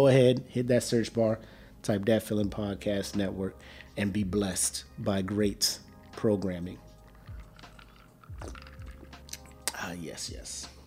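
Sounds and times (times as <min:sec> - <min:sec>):
speech: 0:00.0 - 0:06.8, 0:08.4 - 0:08.6, 0:09.8 - 0:10.7
person sipping a drink with slurps and gulps: 0:06.8 - 0:09.8.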